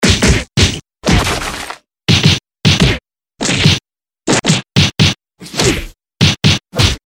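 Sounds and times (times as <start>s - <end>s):
fist hits: 0.0s - 7.0s.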